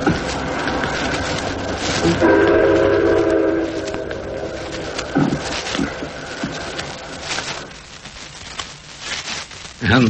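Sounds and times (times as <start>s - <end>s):
rumble and clatter of a moving train on rails: 0.0s - 7.7s
speech: 2.0s - 2.6s
distant train whistle blast at night: 2.0s - 4.7s.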